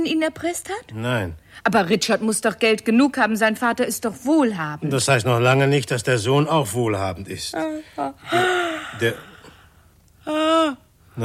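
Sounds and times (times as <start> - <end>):
speech: 0.0 - 9.3, 10.3 - 11.2
man yawning with a breathy groaning voice: 8.1 - 9.6.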